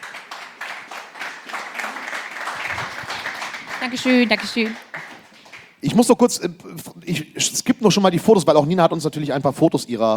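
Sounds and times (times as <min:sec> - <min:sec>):
audience applause: 0:00.0 - 0:05.8
speech: 0:03.8 - 0:04.9, 0:05.9 - 0:10.1.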